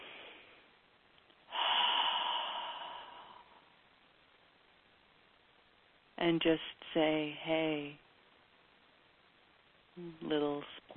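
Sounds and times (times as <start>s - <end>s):
cleansing breath in through the nose, out through the mouth: 0.0s - 0.7s, 1.5s - 3.8s
speech: 6.2s - 8.0s, 10.0s - 10.9s.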